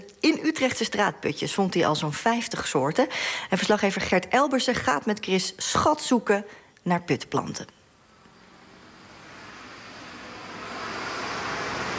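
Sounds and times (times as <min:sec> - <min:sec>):
speech: 0:00.2 - 0:07.8
traffic rumble from cars driving over a city street: 0:07.9 - 0:11.9.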